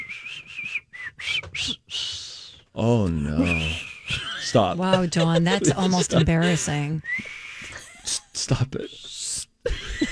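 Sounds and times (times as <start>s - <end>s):
weak breathy attempt at whistling: 0.0s - 2.7s, 3.4s - 4.2s, 7.0s - 7.9s
speech: 2.8s - 3.8s, 4.5s - 7.2s, 8.5s - 9.2s
laughter: 3.4s - 7.0s, 9.7s - 10.1s.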